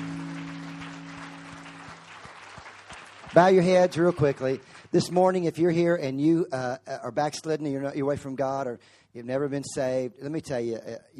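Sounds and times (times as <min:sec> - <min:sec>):
sustained low organ-like tone: 0:00.0 - 0:02.3
large indoor crowd applauding: 0:00.0 - 0:05.4
speech: 0:03.3 - 0:11.1.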